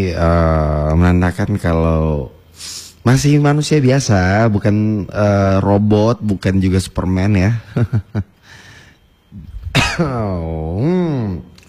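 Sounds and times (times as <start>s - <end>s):
speech: 0.0s - 8.6s, 10.0s - 11.5s
single harsh cough: 9.7s - 10.2s.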